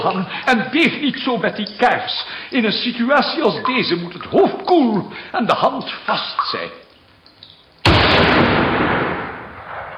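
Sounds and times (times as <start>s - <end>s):
speech: 0.0s - 6.8s
gunshot near houses: 7.9s - 9.9s.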